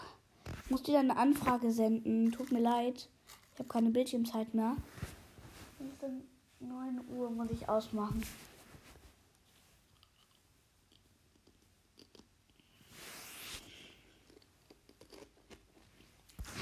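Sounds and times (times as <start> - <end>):
speech: 0.7 - 5.1, 6.0 - 8.5
chewing potato chips: 9.9 - 12.8, 13.9 - 16.4.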